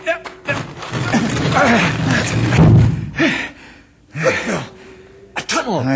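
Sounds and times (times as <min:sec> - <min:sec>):
heavy stone door grinding and scraping open: 0:00.4 - 0:03.1
men grunting and straining: 0:01.0 - 0:04.8.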